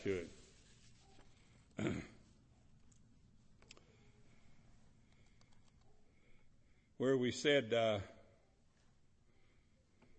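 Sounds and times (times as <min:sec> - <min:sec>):
speech: 0:00.0 - 0:00.4, 0:01.8 - 0:02.2, 0:07.0 - 0:08.1
pages of paper pulled apart rustling: 0:00.0 - 0:01.5.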